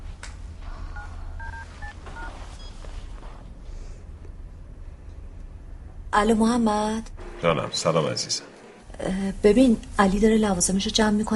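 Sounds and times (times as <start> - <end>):
steady low hum: 0.0 - 11.3
phone keypad dialing beeps: 1.4 - 2.8
speech: 6.2 - 11.3.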